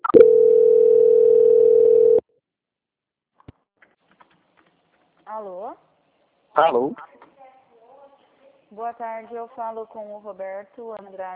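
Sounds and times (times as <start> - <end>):
steady telephone tone during a call transfer: 0.0 - 2.2
speech: 6.6 - 7.1, 8.7 - 11.3.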